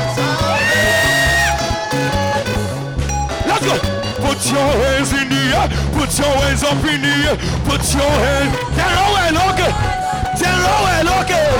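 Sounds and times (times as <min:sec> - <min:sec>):
driving rhythmic backing of thumping bass beats: 0:00.0 - 0:11.5
audience shouting and whooping: 0:00.4 - 0:02.4
speech: 0:03.7 - 0:11.5.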